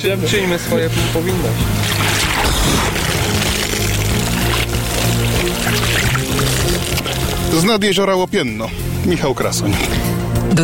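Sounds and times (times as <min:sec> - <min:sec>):
speech: 0:00.0 - 0:03.6, 0:05.2 - 0:06.2, 0:06.8 - 0:10.6
bucket of cold water poured over a man at a lake: 0:01.8 - 0:08.0.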